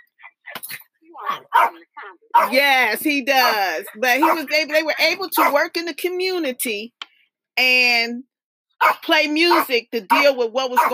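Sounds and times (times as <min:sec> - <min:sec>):
dog barking: 0:01.2 - 0:02.6, 0:04.2 - 0:04.5, 0:05.4 - 0:05.6, 0:08.8 - 0:10.9
speech: 0:01.2 - 0:07.0, 0:07.6 - 0:10.9.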